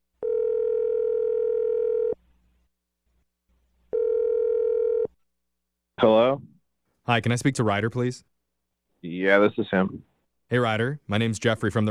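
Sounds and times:
telephone dial tone: 0.2 - 2.2, 3.9 - 5.1
speech: 7.1 - 8.3, 9.0 - 11.8.

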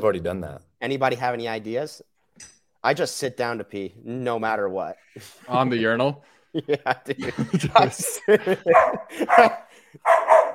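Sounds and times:
speech: 0.0 - 10.2
people laughing: 6.5 - 10.0
dog barking: 8.7 - 10.5.

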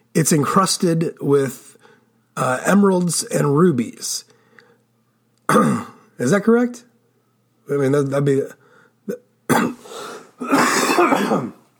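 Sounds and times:
speech: 0.2 - 1.8, 2.4 - 4.3, 5.5 - 6.9, 7.7 - 9.7, 10.4 - 11.6
man clearing his throat: 5.5 - 6.1, 9.1 - 11.7
man coughing harshly and raspily: 5.5 - 6.1, 9.1 - 11.7.

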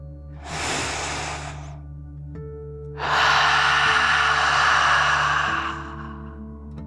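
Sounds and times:
deep breath drawn in through the nose: 0.4 - 1.8, 3.0 - 6.5.

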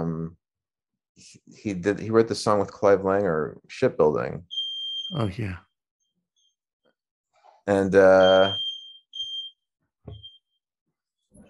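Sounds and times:
speech: 1.2 - 5.7, 7.7 - 8.6
alarm going off with high piercing electronic beeps: 4.5 - 5.3, 8.0 - 10.5.

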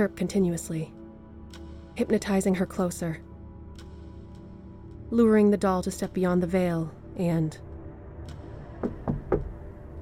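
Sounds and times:
speech: 0.0 - 1.0, 2.0 - 3.3, 5.1 - 7.7
knocking on metal: 8.8 - 9.6.

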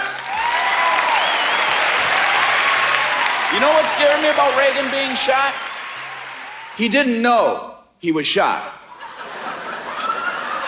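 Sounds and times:
crowd clapping for an arriving performer: 0.0 - 6.8
faint cheers: 0.0 - 7.0
speech: 3.6 - 5.7, 6.8 - 8.8
laughter: 8.8 - 10.6.

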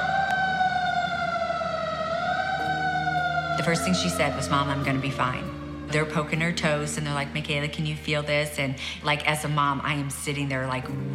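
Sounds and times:
loud emergency vehicle siren wailing: 0.0 - 7.6
speech: 3.6 - 11.1.

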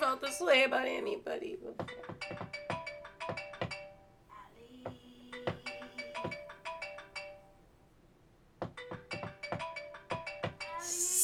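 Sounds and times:
speech: 0.1 - 2.4
mobile phone ringtone playing a short melodic phrase: 1.8 - 4.2, 5.4 - 7.5, 8.8 - 10.8.

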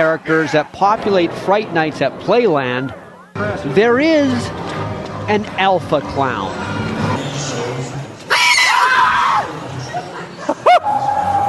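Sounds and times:
speech: 0.0 - 7.6
murmuring chatter: 0.0 - 11.4
shrill shriek: 8.3 - 9.5
crowd screaming: 8.3 - 9.7, 10.6 - 11.4
laughter: 9.6 - 11.1.

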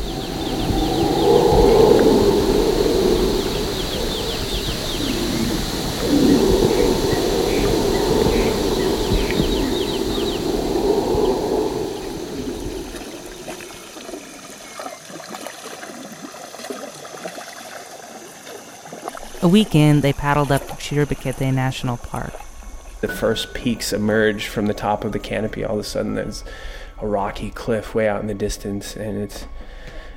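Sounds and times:
high insect-like buzzing in a jungle at night: 0.0 - 14.4
jungle animal and bird calls at night: 0.0 - 15.0
speech: 19.5 - 22.4, 23.0 - 29.6.

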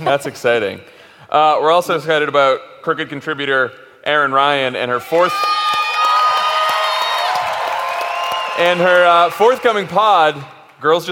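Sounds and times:
speech: 0.1 - 5.5, 8.6 - 11.1
audience cheering, whooping and clapping for a guest: 5.0 - 11.1.

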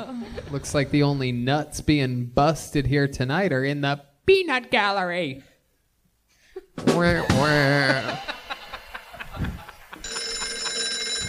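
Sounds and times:
speech: 0.3 - 5.5, 6.8 - 8.3
laughter: 7.1 - 10.9
phone ringing with a steady electronic tone: 10.0 - 11.2.

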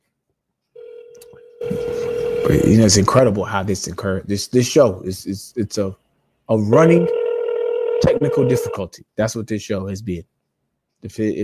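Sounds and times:
telephone line tone on a second phone: 0.8 - 2.8, 6.9 - 8.8
speech: 2.5 - 7.2, 8.0 - 10.4, 11.0 - 11.4.

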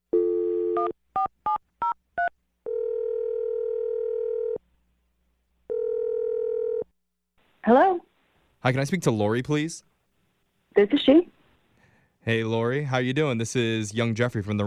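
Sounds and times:
telephone dial tone: 0.1 - 0.9, 2.7 - 4.6, 5.7 - 6.9
long steady telephone ringing tones: 0.2 - 4.6, 5.7 - 6.9
speech: 7.6 - 9.9, 10.8 - 11.3, 12.2 - 14.6.

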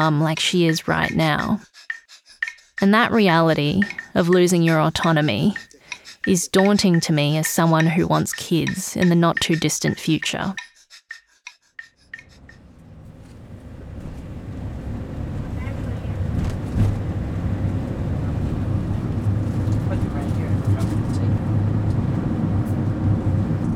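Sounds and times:
speech: 0.0 - 1.9, 2.8 - 10.7
sharp clicks: 0.3 - 12.6
car road rumble on a journey: 12.4 - 23.7.

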